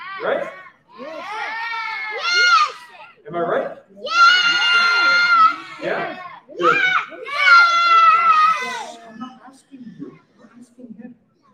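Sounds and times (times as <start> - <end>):
child yelling shrilly in a room: 0.0 - 3.2, 4.1 - 8.9
adults talking in the room: 0.0 - 11.5
speech: 0.2 - 1.4, 3.3 - 4.2.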